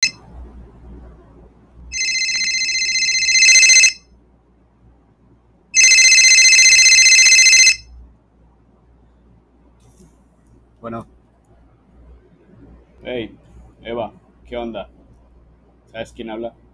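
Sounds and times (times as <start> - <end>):
electronic telephone ringtone: 0.0 - 0.2, 1.9 - 4.1, 5.8 - 7.9
speech: 10.9 - 11.2, 13.1 - 15.0, 15.9 - 16.6.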